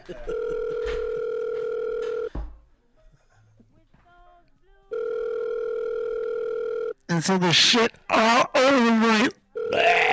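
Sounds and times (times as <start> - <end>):
speech: 0.1 - 0.4, 7.2 - 8.5
loud steady telephone tone: 0.3 - 2.4, 4.9 - 7.0, 9.6 - 10.0.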